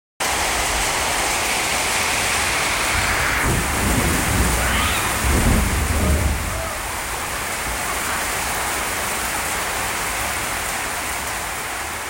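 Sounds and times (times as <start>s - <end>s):
heavy rain at night in Nepal: 0.2s - 12.0s
deep rumble of thunder: 1.8s - 9.2s.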